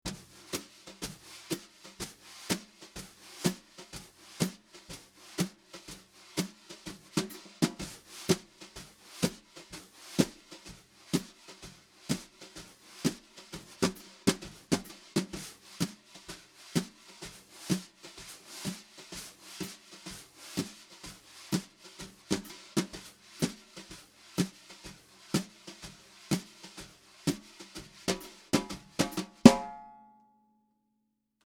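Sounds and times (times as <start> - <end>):
brushes on snare drum recorded with a microphone: 0.1 - 29.7.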